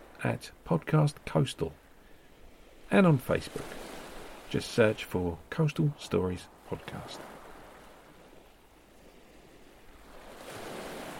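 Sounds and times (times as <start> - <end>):
ocean waves breaking on a beach: 0.0 - 11.1
speech: 0.2 - 1.8, 2.9 - 3.8, 4.5 - 7.4.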